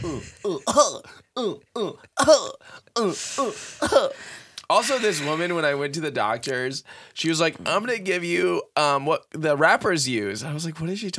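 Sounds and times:
person coughing: 0.0 - 5.5
speech: 0.0 - 11.1.

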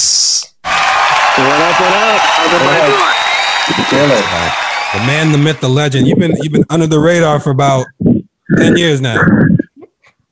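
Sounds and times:
applause: 0.6 - 6.0
voices calling or cheering over clapping: 0.6 - 6.4
speech: 1.4 - 9.6.

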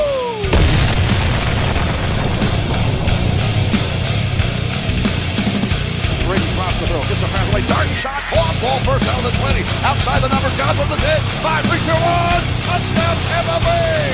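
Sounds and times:
deep cannon boom: 0.5 - 7.1
stadium crowd roaring: 2.2 - 14.1
speech: 8.7 - 14.1.

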